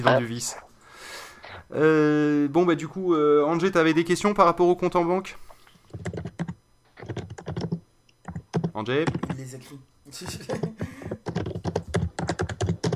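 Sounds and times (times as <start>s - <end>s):
speech: 0.0s - 0.7s, 1.7s - 6.2s, 8.8s - 11.1s
typing on a computer keyboard: 5.9s - 9.4s, 10.5s - 12.9s.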